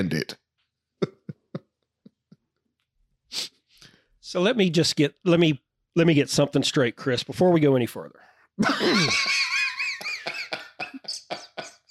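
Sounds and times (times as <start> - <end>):
speech: 0.0 - 0.4, 4.3 - 9.5
laughter: 1.0 - 1.6, 8.6 - 11.8
person clearing throat: 8.6 - 9.1.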